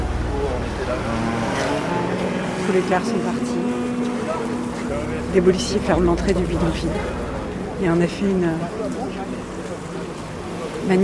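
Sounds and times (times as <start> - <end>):
faint murmuring voices: 0.0 - 11.0
road traffic on a city boulevard: 0.0 - 11.0
speech: 2.7 - 3.7, 4.9 - 7.2, 7.8 - 9.4, 10.8 - 11.0.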